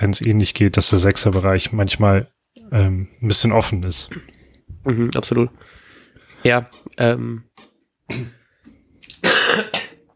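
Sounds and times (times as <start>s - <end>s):
speech: 0.0s - 5.8s, 6.4s - 7.5s, 8.1s - 8.4s
harsh coughs: 8.1s - 8.4s, 9.2s - 10.1s.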